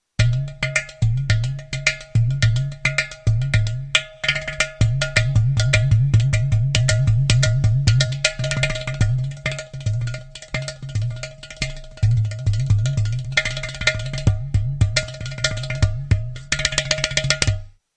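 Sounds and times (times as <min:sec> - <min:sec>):
ghatam playing: 0:00.2 - 0:17.8.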